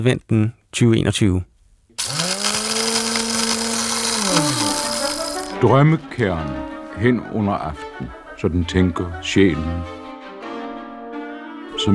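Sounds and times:
speech: 0.0 - 1.5, 5.6 - 10.0
electric blender whirring: 2.0 - 5.6.

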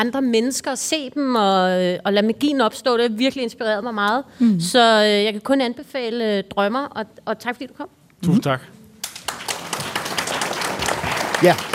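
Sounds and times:
speech: 0.0 - 8.8, 11.4 - 11.7
audience applause for a guest after an interview: 9.0 - 11.7.

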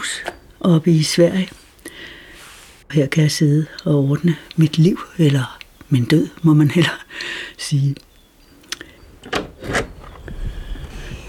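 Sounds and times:
low rumble of outdoor ambience by a field: 0.0 - 11.2
speech: 0.2 - 1.6, 2.9 - 8.1
house door scraping and creaking as it swings open onto a field: 3.6 - 11.2.

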